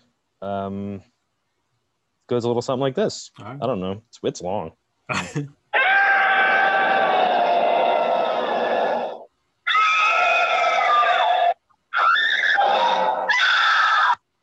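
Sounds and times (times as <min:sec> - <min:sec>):
speech: 0:00.4 - 0:01.2, 0:02.3 - 0:05.6
compilation of people screaming: 0:05.8 - 0:14.2.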